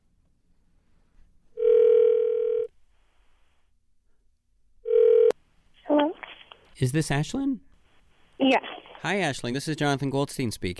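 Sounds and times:
electronic telephone tones over the line: 1.6s - 2.7s, 4.9s - 5.4s
speech: 6.8s - 7.7s, 8.4s - 10.7s.

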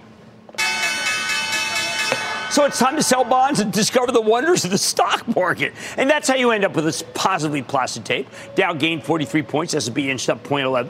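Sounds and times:
bell ringing in a bright continuous clang: 0.6s - 4.7s
speech: 2.5s - 10.8s.

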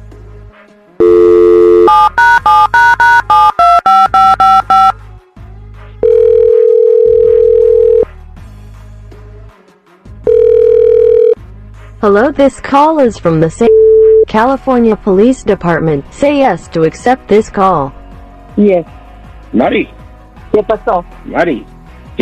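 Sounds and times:
telephone dial tone: 1.0s - 4.9s, 6.0s - 8.0s, 10.3s - 11.4s
speech: 12.0s - 13.7s, 14.3s - 18.0s, 18.6s - 22.2s.

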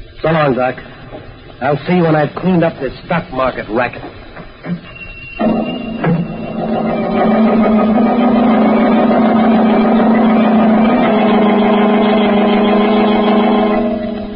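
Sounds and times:
speech: 0.2s - 5.7s
motor car engine starting up and roaring at speed: 4.0s - 14.3s.

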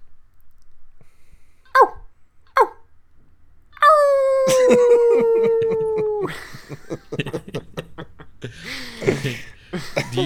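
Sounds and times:
person imitating a coyote locator call by mouth: 1.7s - 2.8s, 3.8s - 6.5s
laughter: 4.4s - 10.2s
speech: 4.7s - 4.9s, 9.2s - 10.2s.

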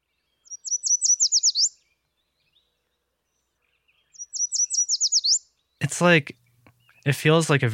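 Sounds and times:
Yellow Warbler singing: 0.0s - 7.7s
speech: 6.0s - 6.4s, 7.0s - 7.7s.

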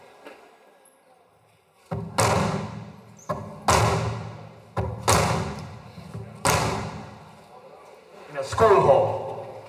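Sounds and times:
hammer striking a mural on a hard wall surface: 1.9s - 7.2s
speech: 8.4s - 9.2s.

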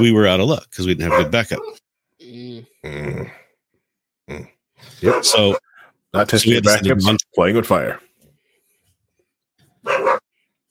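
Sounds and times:
speech: 0.0s - 3.4s, 4.3s - 8.1s
excited dog barking: 1.0s - 1.8s, 5.0s - 5.8s, 9.8s - 10.3s.

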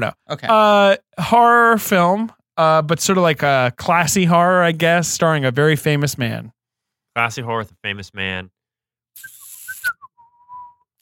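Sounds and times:
speech: 0.0s - 6.6s, 7.2s - 8.6s
person whistling a short wavering tune: 9.2s - 10.9s.

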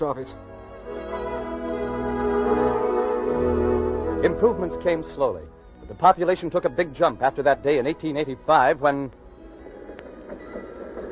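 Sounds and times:
speech: 0.0s - 1.3s, 2.5s - 9.2s
steam train rumbling along rails: 9.4s - 11.0s.

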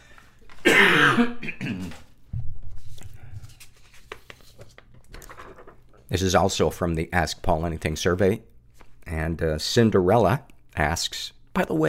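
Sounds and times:
person coughing: 0.6s - 2.0s
throat clearing: 0.6s - 2.0s
speech: 1.2s - 1.4s, 6.1s - 8.5s, 9.2s - 11.8s.

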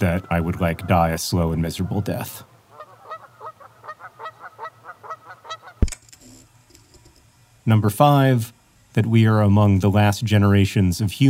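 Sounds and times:
speech: 0.0s - 2.5s, 7.7s - 11.2s
geese honking: 0.0s - 5.8s.

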